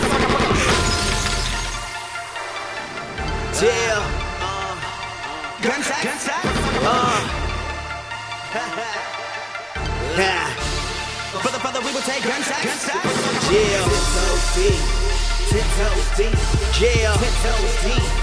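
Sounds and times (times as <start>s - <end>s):
gunshot sound effects: 0.0s - 1.8s
dense music track with vocal-like tones: 0.0s - 18.2s.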